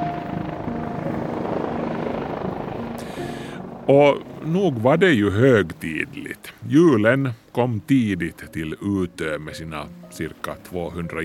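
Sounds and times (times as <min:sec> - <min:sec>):
helicopter rotor and engine roar heard from inside the aircraft on a flight to Utö, Finland: 0:00.0 - 0:04.8
speech: 0:03.9 - 0:11.2.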